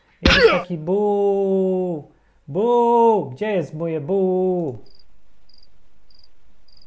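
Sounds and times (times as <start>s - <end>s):
low hum: 0.0s - 6.8s
speech: 0.3s - 4.9s
cricket chirping: 4.8s - 6.8s.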